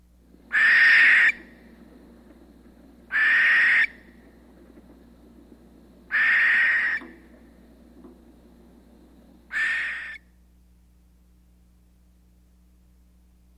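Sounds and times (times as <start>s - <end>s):
barn owl hissing screeches: 0.5s - 1.6s, 3.1s - 4.2s, 6.1s - 7.3s, 9.5s - 10.2s.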